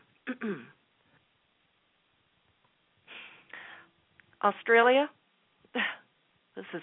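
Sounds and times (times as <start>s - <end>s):
short gravelly throat clearing: 0.2s - 0.8s
speech: 0.3s - 0.8s, 4.4s - 5.2s, 6.6s - 6.8s.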